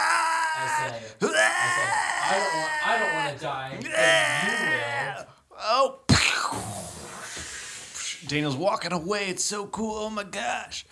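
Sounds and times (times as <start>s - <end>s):
person yelling and screaming: 0.0s - 5.9s
speech: 0.6s - 6.6s, 8.2s - 10.9s.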